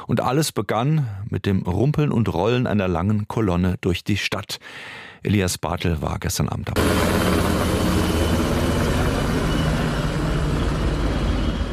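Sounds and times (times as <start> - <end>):
speech: 0.1 - 7.7
military and police helicopters circling over a city during an emergency exercise: 6.8 - 11.7.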